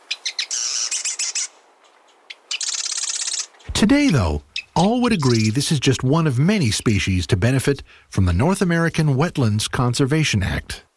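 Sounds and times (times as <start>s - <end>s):
marsh wren singing: 0.0s - 1.5s, 2.3s - 7.3s
speech: 3.8s - 10.9s.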